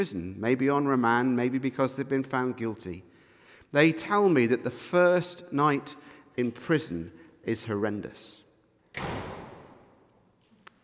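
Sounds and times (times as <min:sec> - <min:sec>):
speech: 0:00.0 - 0:03.1, 0:03.7 - 0:08.4, 0:09.0 - 0:09.2
heavy prison cell door slamming shut: 0:08.9 - 0:10.2.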